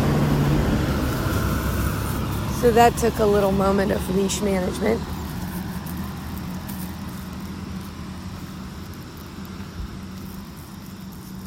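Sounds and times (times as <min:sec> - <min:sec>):
school bus driving past: 0:00.0 - 0:10.2
road noise: 0:00.0 - 0:11.4
speech: 0:02.6 - 0:05.2.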